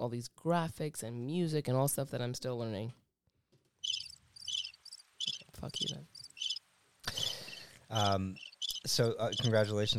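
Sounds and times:
speech: 0.0s - 3.0s, 5.6s - 6.2s, 7.9s - 9.9s
pulsing cricket chirps: 3.8s - 6.6s, 7.2s - 9.5s.

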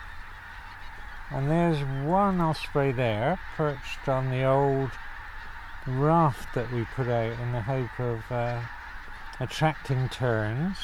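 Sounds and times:
geese honking: 0.0s - 10.8s
speech: 1.3s - 5.1s, 5.8s - 8.8s, 9.4s - 10.8s.

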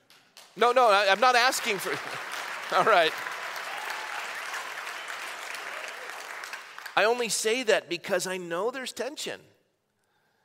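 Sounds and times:
audience clapping: 0.0s - 7.6s
speech: 0.6s - 3.3s, 7.0s - 9.5s.

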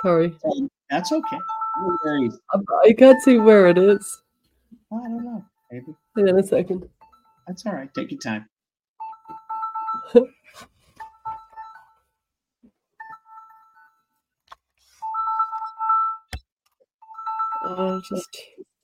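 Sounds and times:
speech: 0.0s - 4.2s, 4.9s - 8.5s, 10.0s - 10.7s, 17.7s - 18.6s
phone ringtone of two-tone electronic notes: 0.9s - 4.2s, 5.1s - 8.1s, 9.0s - 10.3s, 11.0s - 12.1s, 13.0s - 14.2s, 15.0s - 16.3s, 17.0s - 18.3s.

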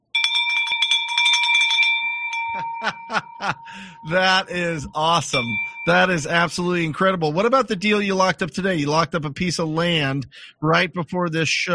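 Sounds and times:
handbell ringing in celebration: 0.1s - 4.2s, 5.3s - 6.3s
laughter: 2.5s - 6.2s
speech: 2.8s - 11.7s
person calling out: 3.7s - 6.4s.

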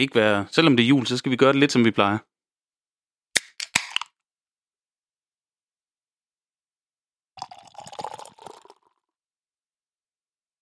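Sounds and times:
speech: 0.0s - 2.3s
beer can cracking open with hiss: 3.4s - 4.1s
beer pouring into a glass: 7.4s - 9.1s.

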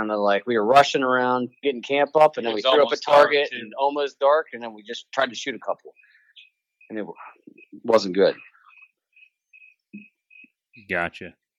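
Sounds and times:
speech: 0.0s - 6.0s, 6.9s - 8.5s, 10.8s - 11.4s
crickets chirping: 2.6s - 10.9s.

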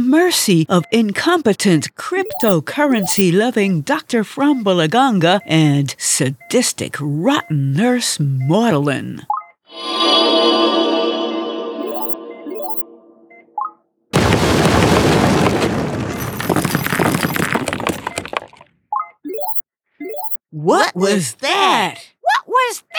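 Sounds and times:
speech: 0.1s - 10.9s, 20.6s - 22.9s
short squeaky chirps: 2.2s - 3.2s, 19.3s - 20.4s
steady electronic tone: 9.7s - 13.5s, 19.3s - 20.4s
loud roaring explosion: 14.2s - 18.2s.

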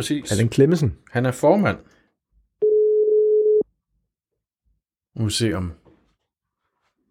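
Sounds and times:
speech: 0.0s - 2.0s, 5.2s - 5.8s
steady telephone dialing tone while placing a call: 2.6s - 3.6s.

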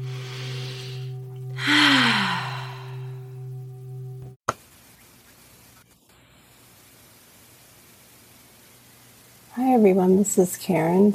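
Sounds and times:
long loud airy deep breath inhalation: 0.0s - 3.2s
steady low hum: 0.0s - 4.4s
speech: 9.6s - 11.1s.

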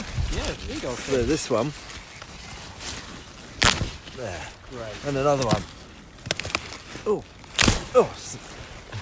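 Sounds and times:
rhubarb plant rustle: 0.0s - 8.9s
speech: 0.5s - 2.0s, 4.2s - 5.8s, 7.0s - 8.6s
rhubarb stalk snapping as pulled from the plant: 3.5s - 4.1s, 5.3s - 8.2s.

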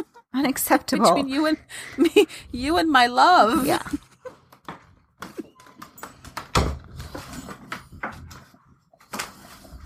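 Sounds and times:
speech: 0.4s - 4.1s
door being opened for a pet: 5.2s - 8.2s.

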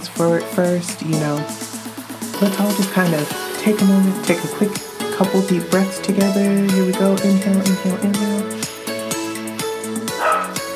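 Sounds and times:
speech: 0.1s - 1.6s, 2.4s - 8.4s
dog barking: 10.2s - 10.6s.

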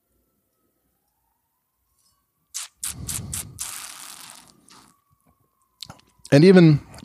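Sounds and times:
person sipping wine from a glass: 2.6s - 4.9s
speech: 6.3s - 6.9s.

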